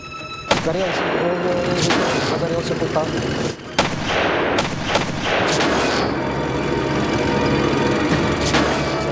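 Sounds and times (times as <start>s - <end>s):
loud impacts on German tanks: 0.5s - 2.6s, 3.2s - 6.4s, 8.0s - 9.1s
anti-tank rifle fire hitting tanks: 0.5s - 2.7s, 3.7s - 6.2s, 8.4s - 9.1s
dense continuous battle rumble: 0.5s - 9.1s.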